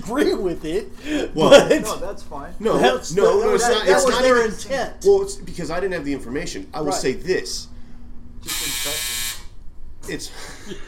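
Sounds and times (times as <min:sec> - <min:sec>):
speech: 0:00.0 - 0:07.7, 0:10.1 - 0:10.8
laughter: 0:01.0 - 0:02.1, 0:10.3 - 0:10.8
loud harsh electronic buzzer: 0:08.4 - 0:09.5.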